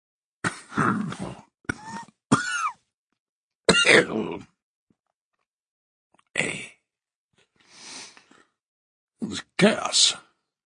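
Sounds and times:
speech: 0.8 - 1.5, 3.9 - 4.5, 9.6 - 10.3
man coughing and clearing his throat into a handkerchief: 1.7 - 2.8, 3.7 - 4.4.

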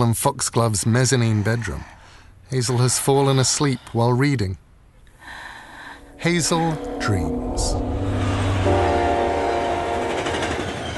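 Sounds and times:
speech: 0.0 - 4.6, 6.2 - 8.0
sustained horn-like tone: 6.0 - 10.8
train rumbling along the rails: 6.1 - 10.9.

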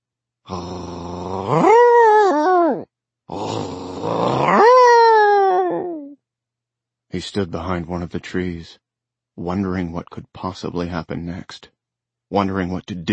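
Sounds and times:
speech: 0.4 - 1.7, 7.2 - 8.8, 9.4 - 13.1
dog howling: 1.4 - 2.8, 4.3 - 6.2.

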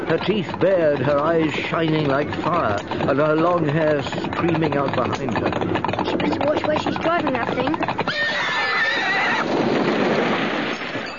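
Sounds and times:
hooves and commotion: 0.0 - 11.1
speech: 0.1 - 8.5
horse whinnying while rearing on its hind legs: 7.8 - 10.0.

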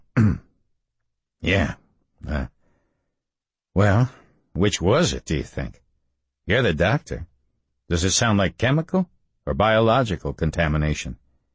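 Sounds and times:
man clearing his throat: 0.0 - 0.5
speech: 1.5 - 2.5, 3.8 - 5.8, 6.4 - 7.3, 7.9 - 11.2.

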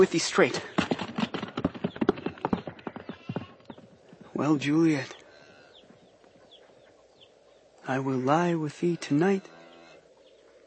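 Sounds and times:
speech: 0.0 - 0.8, 4.4 - 5.2, 7.9 - 9.6
horse hooves clip-clopping in a trot: 0.0 - 4.4.

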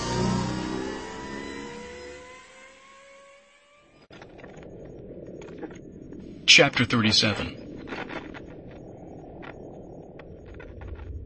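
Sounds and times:
vehicle engine revving as the throttle is squeezed at night: 0.0 - 4.0
speech: 6.5 - 7.6.

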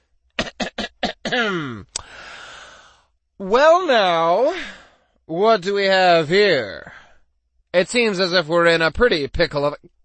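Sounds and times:
person clearing throat: 0.4 - 2.0
speech: 1.3 - 2.0, 3.4 - 7.0, 7.7 - 9.9.

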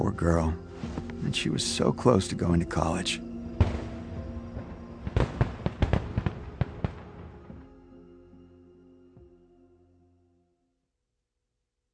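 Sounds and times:
speech: 0.0 - 0.6, 1.2 - 3.3
fireworks exploding with booms, bangs and crackles: 3.6 - 7.7.

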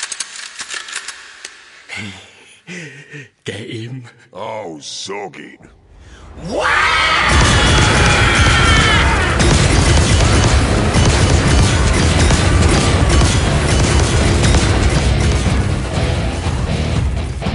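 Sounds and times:
speech: 2.0 - 5.8, 6.4 - 7.4
heavy gunfire from an ork's crude shooter: 7.2 - 17.4.

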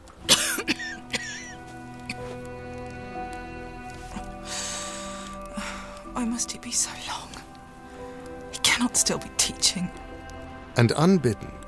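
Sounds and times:
person coughing in a spasm: 0.3 - 1.6
speech: 6.3 - 7.3, 8.8 - 10.1, 10.8 - 11.6.

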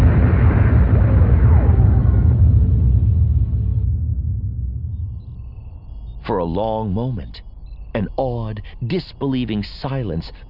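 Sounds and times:
sci-fi blaster fire: 0.0 - 5.2
sci-fi missile explosions with a deep roaring rumble: 0.0 - 5.8
descending whine: 0.0 - 8.6
speech: 6.4 - 10.4.

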